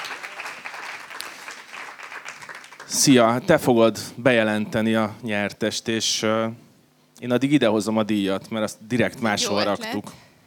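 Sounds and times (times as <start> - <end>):
audience applause at an award event: 0.0 - 3.2
speech: 2.9 - 6.6, 7.2 - 10.2.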